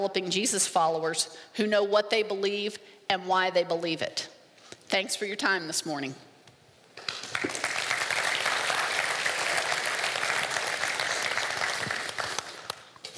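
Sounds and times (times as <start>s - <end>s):
speech: 0.0s - 4.3s, 4.9s - 6.3s
room full of people applauding: 7.0s - 12.8s.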